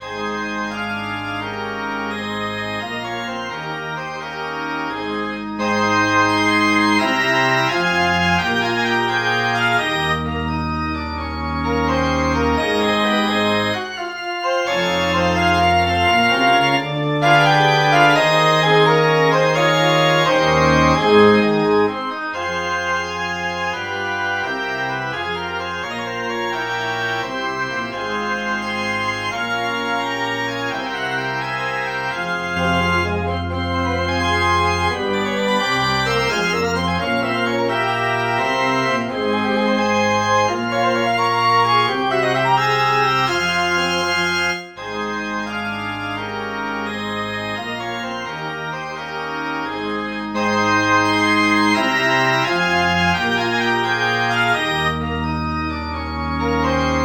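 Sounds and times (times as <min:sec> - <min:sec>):
synthesized organ piece: 0:00.0 - 0:57.0.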